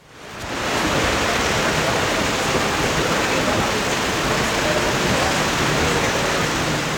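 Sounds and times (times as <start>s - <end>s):
rain pouring onto a white umbrella at a wet golf tournament in the Netherlands: 0.0s - 6.9s.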